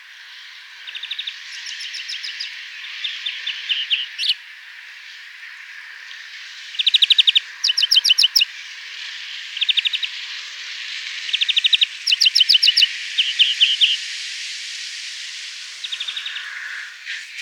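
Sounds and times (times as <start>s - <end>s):
steady background hiss: 0.0s - 17.4s
European greenfinch Chloris chloris calls: 0.8s - 4.4s, 6.6s - 8.5s, 9.5s - 14.0s.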